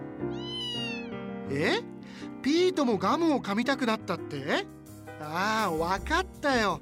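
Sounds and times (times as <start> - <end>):
cat meowing: 0.3 - 1.3
speech: 2.8 - 6.7.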